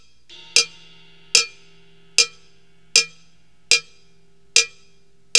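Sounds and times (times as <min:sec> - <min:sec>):
cowbell: 0:00.3 - 0:05.3.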